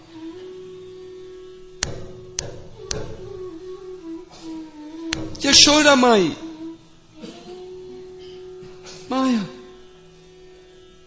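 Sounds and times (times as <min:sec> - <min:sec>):
steady humming drone: 0:00.0 - 0:11.0
loud knocks on a palace door: 0:01.8 - 0:03.4
speech: 0:05.5 - 0:06.4.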